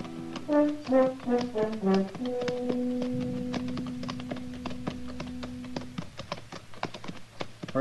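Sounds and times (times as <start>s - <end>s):
brief musical phrase: 0.0s - 6.0s
horses' hooves clip-clopping at a walking pace down a town main street: 0.0s - 7.8s
speech: 0.5s - 3.3s.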